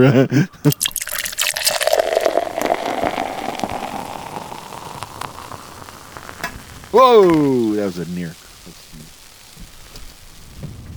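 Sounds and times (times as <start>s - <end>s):
speech: 0.0s - 1.0s, 6.9s - 8.4s
liquid pouring in a splashy stream: 0.7s - 8.0s.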